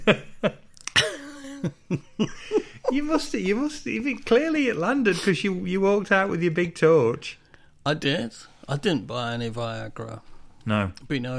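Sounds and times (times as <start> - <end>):
laughter: 0.0 - 3.6
person coughing harshly: 1.0 - 1.8
speech: 1.6 - 11.3.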